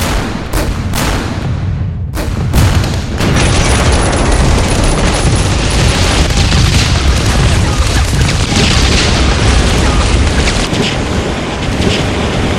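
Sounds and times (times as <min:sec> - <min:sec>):
machine-gun fire: 0:00.0 - 0:11.1
battlefield bombardment shell explosions: 0:00.0 - 0:12.4
flamethrowers: 0:02.5 - 0:12.5.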